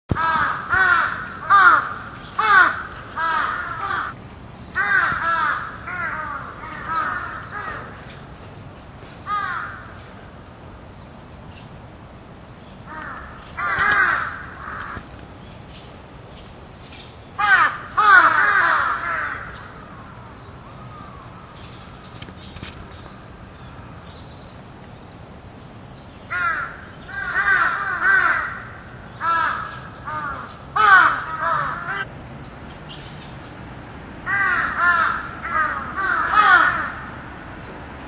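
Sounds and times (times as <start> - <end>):
large-billed crow: 0.1 - 4.2, 4.8 - 8.2, 9.3 - 10.0, 12.9 - 15.1, 17.4 - 21.9, 26.3 - 32.1, 34.3 - 37.1.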